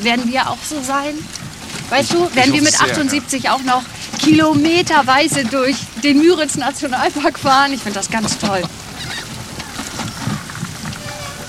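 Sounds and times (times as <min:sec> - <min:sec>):
speech: 0:00.0 - 0:08.8
seagulls calling: 0:00.0 - 0:11.4
steady wash of outdoor noise hiss: 0:00.0 - 0:11.4.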